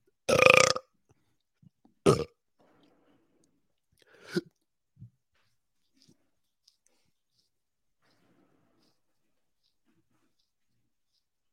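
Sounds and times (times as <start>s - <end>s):
loud drawn-out burps: 0.3s - 0.9s, 2.0s - 2.4s.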